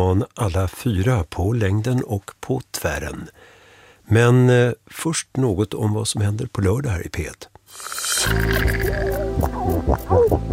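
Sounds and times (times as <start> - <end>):
speech: 0.0 - 10.5
seals grunting underwater: 7.8 - 10.5.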